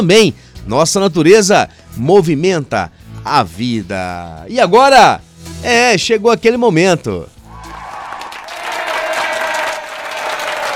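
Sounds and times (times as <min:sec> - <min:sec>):
speech: 0:00.0 - 0:07.4
audience applauding at a live show: 0:07.7 - 0:10.7.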